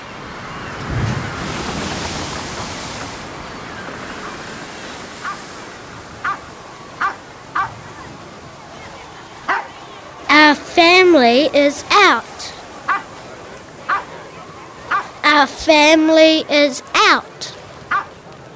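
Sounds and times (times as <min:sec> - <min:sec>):
gusty wind: 0:00.0 - 0:16.6
water sloshing and splashing against tugboats: 0:00.0 - 0:18.5
speech: 0:11.1 - 0:12.2, 0:15.4 - 0:17.5
dog barking: 0:13.9 - 0:14.1.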